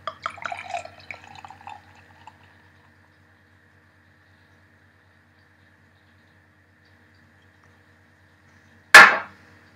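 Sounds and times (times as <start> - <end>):
pale ale glugging and splashing out of a bottle: 0.0 - 2.6
sharp knock: 9.0 - 9.4.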